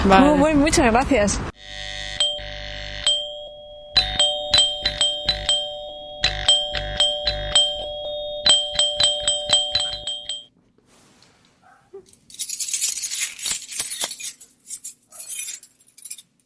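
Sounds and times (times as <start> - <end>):
speech: 0.0 - 2.0
electronic home doorbell chiming: 1.6 - 10.5.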